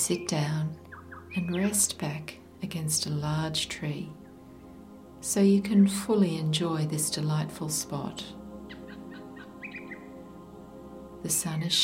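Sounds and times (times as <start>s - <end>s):
birds chirping and singing on a sunny day: 0.0s - 2.2s, 8.6s - 10.3s
speech: 0.0s - 4.2s, 5.2s - 8.4s, 11.2s - 11.8s.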